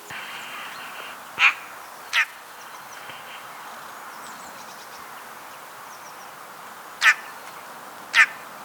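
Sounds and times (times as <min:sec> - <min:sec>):
Eurasian magpie Pica pica uttering loud rasping notes: 0:00.2 - 0:02.4, 0:07.0 - 0:07.3, 0:08.1 - 0:08.4.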